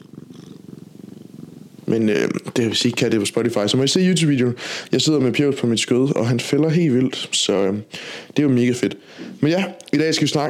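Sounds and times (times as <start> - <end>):
cat purring: 0.0 - 7.8
speech: 1.9 - 10.4.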